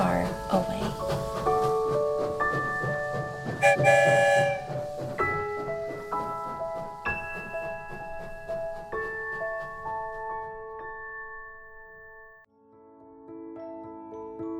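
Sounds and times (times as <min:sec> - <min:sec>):
train pulling away: 0:00.0 - 0:10.7
train horn: 0:03.5 - 0:05.0.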